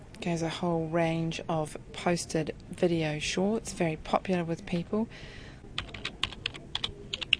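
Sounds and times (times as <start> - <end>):
speech: 0.2 - 5.4
computer keyboard typing while a search term is entered: 5.8 - 7.3.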